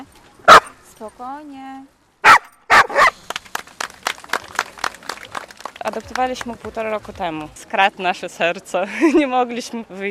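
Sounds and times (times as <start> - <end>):
dog barking: 0.5 - 0.7, 2.2 - 3.2
speech: 1.0 - 2.0, 5.9 - 10.0
dog yipping: 2.2 - 3.1.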